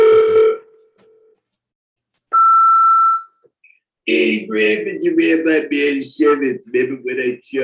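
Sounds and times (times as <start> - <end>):
short harmonic-rich electronic phone beep: 2.3 - 3.4
speech: 4.0 - 7.6.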